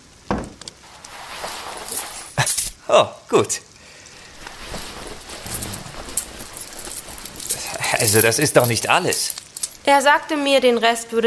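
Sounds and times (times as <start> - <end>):
coins clinking and rattling as they are handed over: 0.9 - 2.8, 4.2 - 10.0
speech: 2.9 - 3.7, 8.0 - 11.2.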